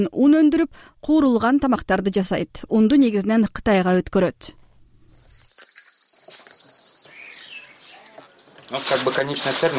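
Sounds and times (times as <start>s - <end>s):
speech: 0.0s - 4.6s, 8.7s - 9.7s
crickets chirping at a cricket farm: 4.8s - 8.1s.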